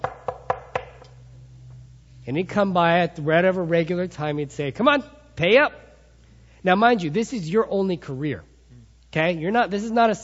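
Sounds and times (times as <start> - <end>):
knocking on a door: 0.0 - 1.0
low steady hum: 0.0 - 10.2
speech: 2.3 - 5.8, 6.6 - 8.5, 9.1 - 10.2.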